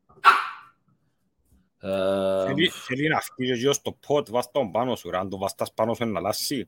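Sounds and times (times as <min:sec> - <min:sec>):
dog barking: 0:00.2 - 0:00.8
speech: 0:01.8 - 0:06.6.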